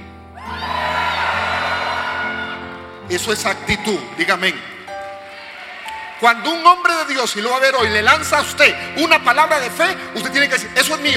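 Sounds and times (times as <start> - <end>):
church audience shouting and whooping: 0.4 - 6.5
speech: 3.1 - 4.7, 6.2 - 11.1.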